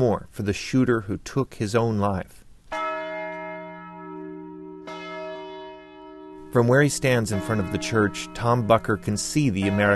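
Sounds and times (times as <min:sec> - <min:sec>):
speech: 0:00.0 - 0:02.4, 0:06.5 - 0:09.9
massive church bell swung by a bell ringer tolling: 0:02.7 - 0:09.9.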